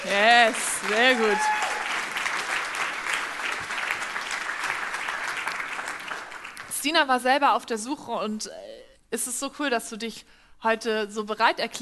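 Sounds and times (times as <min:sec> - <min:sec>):
audience applause in a church: 0:00.0 - 0:06.7
speech: 0:00.1 - 0:01.6, 0:06.8 - 0:11.8.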